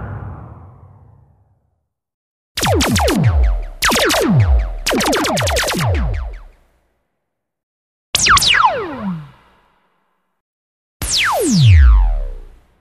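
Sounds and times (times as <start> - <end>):
radio jingle laser sound effects: 2.6 - 6.6, 8.2 - 9.6, 11.0 - 12.6.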